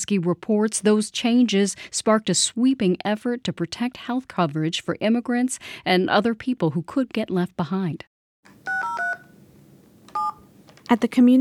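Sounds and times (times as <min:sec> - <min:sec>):
speech: 0:00.1 - 0:08.1, 0:10.9 - 0:11.4
touch-tone phone keypad beeps: 0:08.6 - 0:09.4, 0:10.1 - 0:10.5.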